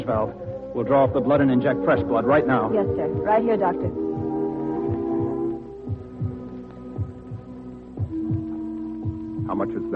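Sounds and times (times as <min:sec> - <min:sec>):
speech: 0:00.0 - 0:04.1, 0:09.6 - 0:09.9
heartbeat with soft low double thumps: 0:02.7 - 0:09.6.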